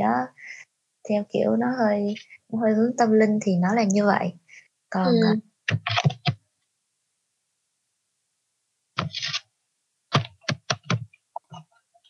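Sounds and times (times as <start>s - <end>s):
speech: 0.0s - 6.1s
hands tapping and knocking on a laptop: 10.1s - 11.7s.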